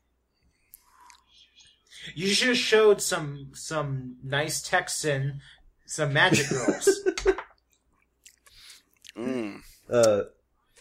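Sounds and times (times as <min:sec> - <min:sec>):
speech: 0:02.0 - 0:07.4, 0:09.9 - 0:10.4
chewing mouth noises close to the microphone: 0:07.7 - 0:09.2
short loud voiced hums or grunts: 0:09.1 - 0:10.3.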